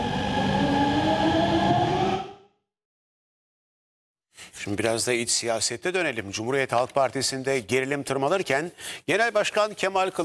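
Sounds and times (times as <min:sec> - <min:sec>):
metro train with domestic signalling system running at speed: 0:00.0 - 0:02.4
speech: 0:04.6 - 0:10.2.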